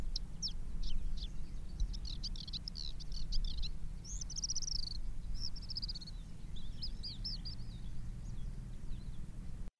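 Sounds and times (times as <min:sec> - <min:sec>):
Javan bush lark song with sharp notes, trill and warbles: 0:00.0 - 0:09.7
low constant rumble: 0:00.0 - 0:09.7.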